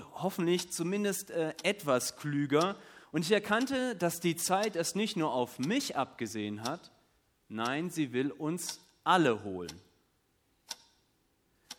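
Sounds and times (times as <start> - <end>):
clock ticking: 0.0 - 11.7
speech: 0.2 - 9.9.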